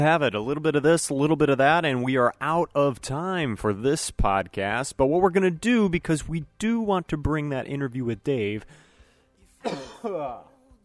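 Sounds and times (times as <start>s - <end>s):
speech: 0.0s - 8.8s, 9.6s - 10.5s
person coughing with slight throat irritation: 9.6s - 10.4s
throat clearing from someone with slight throat irritation: 9.6s - 10.5s.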